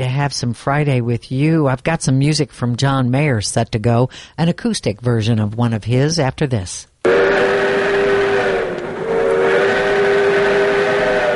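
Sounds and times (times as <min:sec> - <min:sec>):
speech: 0:00.0 - 0:07.8
low rumbling steam engine noise: 0:07.1 - 0:11.3
restored steam engine whistle in a redwood forest: 0:07.1 - 0:11.3.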